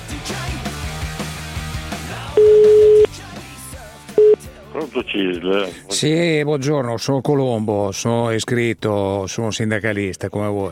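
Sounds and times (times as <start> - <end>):
music: 0.0 - 6.6
telephone ring tone on an outgoing call: 2.4 - 3.1
speech: 4.8 - 10.7.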